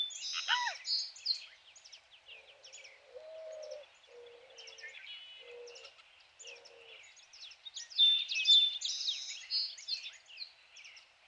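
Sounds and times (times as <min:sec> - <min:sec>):
birds chirping and twittering at high pitch: 0:00.0 - 0:11.2
dove giving soft low level coos: 0:02.4 - 0:07.0.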